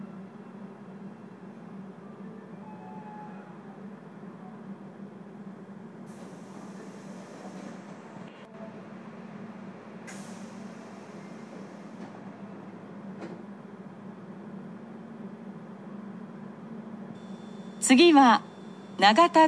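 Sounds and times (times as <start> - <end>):
subway car rumbling and humming while slowing to a halt: 0.0 - 19.4
pneumatic hiss of subway doors releasing and sliding open: 6.1 - 8.0, 10.1 - 12.2
speech: 17.9 - 19.4.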